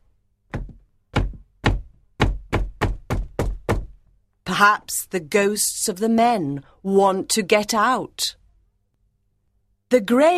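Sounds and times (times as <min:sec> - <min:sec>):
knocking on the door of a room in Glamis Castle in Scotland: 0:00.5 - 0:04.0
speech: 0:04.5 - 0:08.4, 0:09.9 - 0:10.3.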